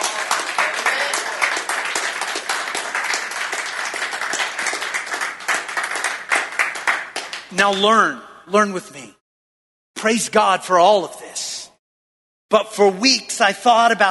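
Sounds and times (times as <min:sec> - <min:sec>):
audience clapping hands: 0:00.0 - 0:08.2
speech: 0:07.6 - 0:09.2, 0:10.0 - 0:11.6, 0:12.5 - 0:14.0.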